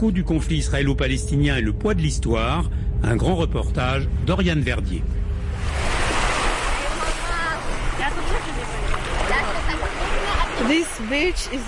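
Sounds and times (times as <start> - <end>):
speech: 0.0 - 5.2, 10.6 - 11.6
Mediterranean sea waves rolling onto a beach at Marbella in Spain: 5.4 - 11.6.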